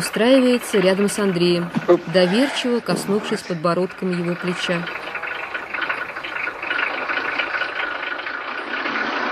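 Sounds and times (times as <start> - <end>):
truck engine running: 0.0 - 9.3
speech: 0.2 - 5.0.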